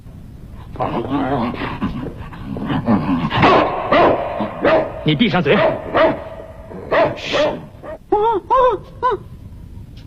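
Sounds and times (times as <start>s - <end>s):
speech: 0.8s - 6.2s, 7.1s - 7.6s, 8.2s - 9.3s
human voice imitating a dog with yapping barks and yelps: 3.4s - 9.4s.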